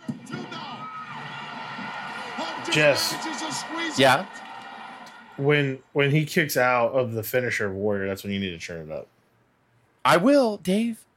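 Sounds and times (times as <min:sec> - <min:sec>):
large wrestling arena crowd cheering and shouting: 0:00.0 - 0:05.7
speech: 0:02.7 - 0:04.4, 0:05.4 - 0:09.2, 0:10.0 - 0:11.1.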